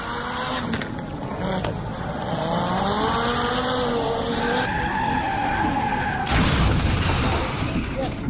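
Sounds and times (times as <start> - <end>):
rally car engine revving up and down on a bend: 0.0 - 6.2
rally car tyres skidding loudly: 0.0 - 8.2
rally car crash: 6.1 - 8.2.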